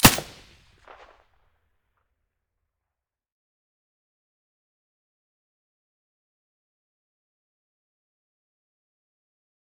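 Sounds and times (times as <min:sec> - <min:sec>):
gunshot with silencer: 0:00.0 - 0:01.0.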